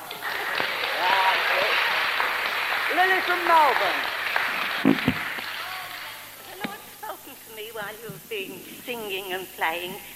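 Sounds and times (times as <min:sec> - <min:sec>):
audience applauding: 0:00.0 - 0:06.4
speech: 0:03.0 - 0:04.2, 0:07.8 - 0:10.1.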